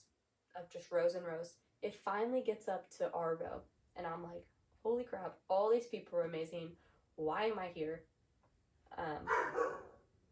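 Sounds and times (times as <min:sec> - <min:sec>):
speech: 0:00.6 - 0:08.1, 0:08.9 - 0:09.8
dogs barking: 0:09.3 - 0:10.0.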